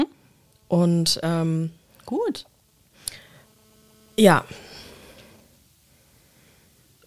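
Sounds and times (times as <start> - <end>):
speech: 0.7 - 2.5, 4.2 - 4.6
deep breathing during breathing exercise: 3.0 - 3.5, 4.5 - 6.9.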